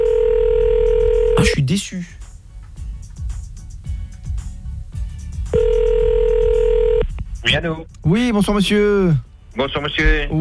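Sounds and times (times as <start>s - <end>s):
telephone dial tone while placing a call: 0.0s - 1.4s, 5.6s - 7.0s
speech: 1.7s - 2.2s, 7.5s - 10.4s.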